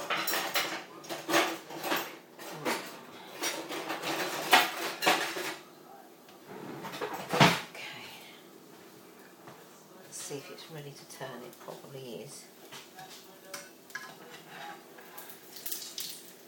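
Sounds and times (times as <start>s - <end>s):
metal fish slice and pan clattering during cooking: 0.0s - 5.7s, 13.1s - 16.2s
speech: 10.4s - 12.6s.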